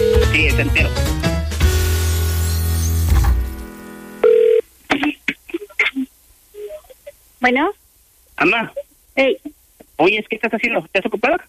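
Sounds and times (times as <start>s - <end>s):
telephone ringing: 0.0s - 0.7s, 4.2s - 4.7s
loud music: 0.0s - 3.7s
speech: 0.6s - 1.2s, 7.4s - 7.8s, 8.4s - 11.4s.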